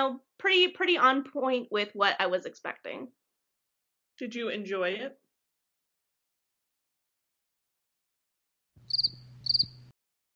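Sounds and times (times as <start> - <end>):
speech: 0.0 - 3.2, 4.2 - 5.2
cricket chirping: 8.9 - 9.9.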